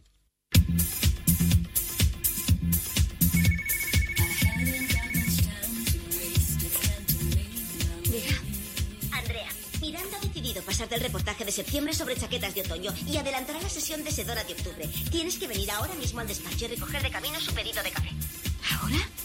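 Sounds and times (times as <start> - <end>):
busy rhythmic music bed: 0.6 - 19.2
phone ringtone: 3.3 - 5.5
speech: 10.8 - 18.2.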